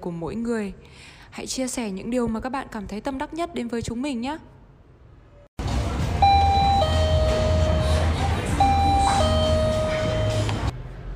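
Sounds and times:
speech: 0:00.0 - 0:04.6
electronic convenience store door entry chime: 0:06.2 - 0:10.7.

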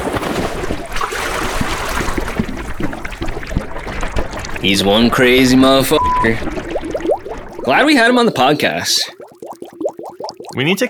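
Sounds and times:
splashy knocks: 0:00.0 - 0:10.4
rushing and bubbling water from scuba diver going into the water: 0:00.0 - 0:10.8
speech: 0:04.6 - 0:06.6, 0:07.7 - 0:09.2, 0:10.6 - 0:10.8.

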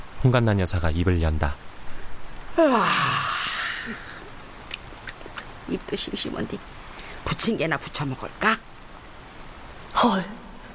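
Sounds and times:
speech: 0:00.2 - 0:01.7, 0:02.6 - 0:03.2, 0:05.7 - 0:08.7, 0:10.0 - 0:10.4
faint clicks: 0:01.8 - 0:02.5, 0:04.6 - 0:05.5
woman yawning with a falling whiny pitch: 0:02.6 - 0:04.2.

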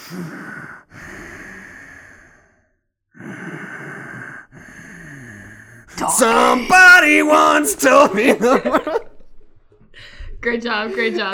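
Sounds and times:
person breathing loudly and heavily imitating a horror-movie killer: 0:00.0 - 0:06.6
speech: 0:00.1 - 0:00.9, 0:06.0 - 0:09.0, 0:10.4 - 0:11.3
laughter: 0:06.0 - 0:09.5, 0:10.5 - 0:11.3.

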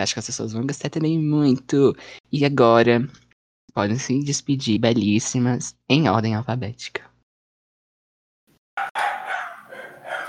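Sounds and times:
speech: 0:00.0 - 0:07.1
female dogs barking and yelping: 0:08.8 - 0:10.2.

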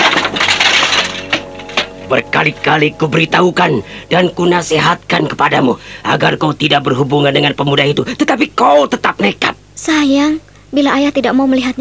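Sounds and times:
wooden chair cracking and splintering as it is kicked and smashed: 0:00.0 - 0:02.0
sharp impacts of falling chair debris: 0:00.0 - 0:04.0
speech: 0:02.1 - 0:11.8.

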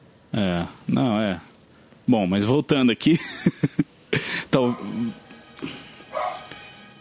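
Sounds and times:
speech: 0:00.4 - 0:01.5, 0:02.1 - 0:05.8
laughter: 0:03.1 - 0:04.5
neighbours' dog barking yaps: 0:04.6 - 0:05.1, 0:06.1 - 0:06.9.

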